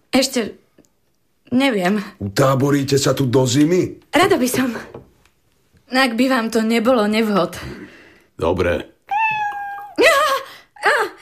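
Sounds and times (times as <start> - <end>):
speech: 0.2 - 0.6, 1.5 - 5.0, 5.9 - 7.8, 8.4 - 8.9
cats yowling: 9.1 - 10.0.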